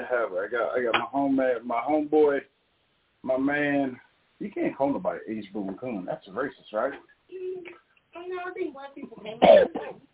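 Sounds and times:
voiced sounds: 0.0s - 2.4s, 3.3s - 9.9s
speech: 0.0s - 2.6s, 3.2s - 10.1s
loud cough into the microphone: 9.3s - 10.1s.

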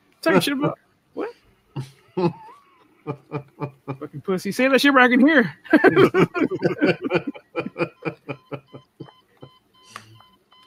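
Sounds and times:
speech: 0.2s - 2.4s, 3.1s - 8.2s
people laughing and snickering: 1.8s - 4.2s, 5.7s - 10.1s
alarm beeping in electronic pulses: 6.0s - 10.6s.

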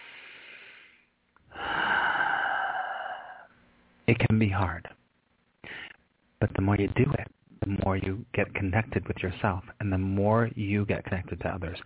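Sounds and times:
deep breath during a guided forgiveness meditation: 0.0s - 3.6s, 5.6s - 6.0s
speech: 4.1s - 5.0s, 6.4s - 11.8s.

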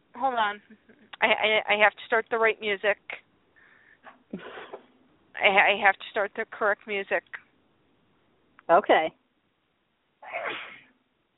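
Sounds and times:
speech: 0.2s - 3.2s, 5.4s - 7.4s, 8.7s - 9.2s
person sneezing: 4.4s - 4.8s, 10.2s - 10.8s.

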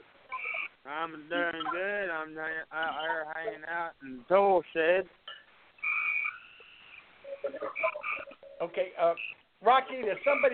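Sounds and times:
frog croaking over a phone line: 0.3s - 0.8s, 5.8s - 7.0s, 7.6s - 9.4s, 10.2s - 10.5s
speech: 0.9s - 5.2s, 7.4s - 10.5s.

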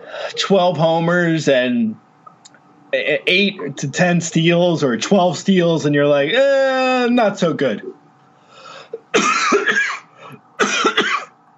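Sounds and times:
speech: 0.3s - 2.0s, 2.9s - 8.0s, 9.2s - 9.6s
harsh choking coughs from someone with a boba pearl stuck in the throat: 8.9s - 11.4s.

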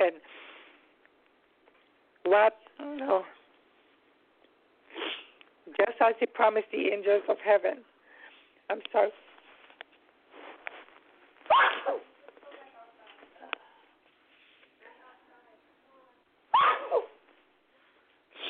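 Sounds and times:
soft breathing: 0.2s - 1.0s, 8.0s - 8.7s, 17.6s - 18.4s
speech: 2.3s - 3.4s, 5.7s - 7.9s, 8.7s - 9.2s
person sneezing: 4.9s - 5.4s, 11.5s - 12.1s, 16.6s - 17.2s.

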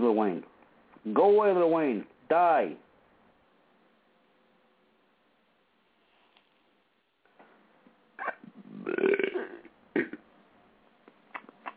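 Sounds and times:
speech: 0.0s - 2.8s
burp: 8.2s - 10.2s
throaty gulps: 8.2s - 10.2s.

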